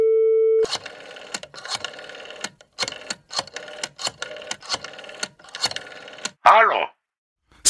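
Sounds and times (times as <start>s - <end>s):
telephone line tone after lifting receiver: 0.0s - 2.4s.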